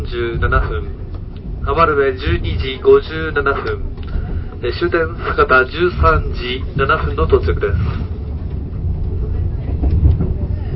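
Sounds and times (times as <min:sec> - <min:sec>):
six-car passenger train running, heard from inside a carriage: 0:00.0 - 0:10.7
speech: 0:00.1 - 0:03.9, 0:04.6 - 0:08.1.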